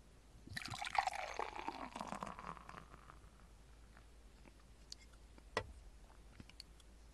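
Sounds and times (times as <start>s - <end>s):
beer pouring from a can into a glass: 0.5s - 3.4s.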